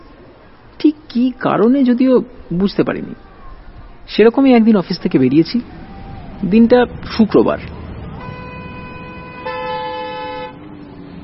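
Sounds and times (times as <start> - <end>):
speech: 1.2 - 3.3, 4.1 - 5.8, 6.4 - 7.7
car horns honking in a traffic jam: 8.1 - 10.7.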